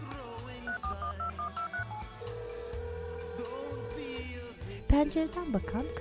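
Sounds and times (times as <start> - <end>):
low musical backdrop: 0.0 - 5.9
answering machine beep tone: 0.7 - 4.2, 5.0 - 5.9
speech: 4.9 - 5.9.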